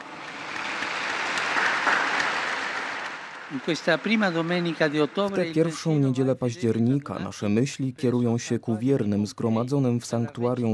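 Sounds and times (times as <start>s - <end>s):
large crowd applauding the newly beatified: 0.0s - 6.2s
speech: 3.5s - 10.7s.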